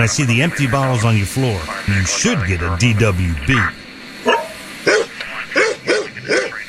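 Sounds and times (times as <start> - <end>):
speech: 0.0 - 4.4
dog barking: 4.2 - 6.6.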